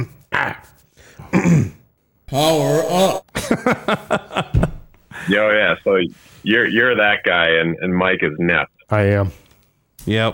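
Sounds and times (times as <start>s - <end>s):
person clearing throat: 1.2s - 3.2s
speech: 1.4s - 4.6s, 5.3s - 9.4s, 10.0s - 10.3s
laughter: 2.6s - 5.3s.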